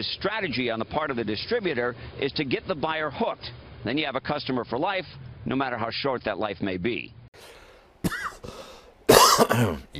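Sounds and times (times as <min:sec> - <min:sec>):
speech: 0:00.0 - 0:08.6, 0:09.4 - 0:09.9
person coughing harshly: 0:08.0 - 0:09.9.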